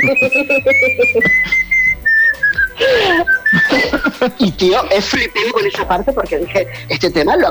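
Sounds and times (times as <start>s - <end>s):
person whistling a song's melody: 0.0s - 4.3s
laughter: 0.0s - 7.4s
speech: 0.0s - 7.4s.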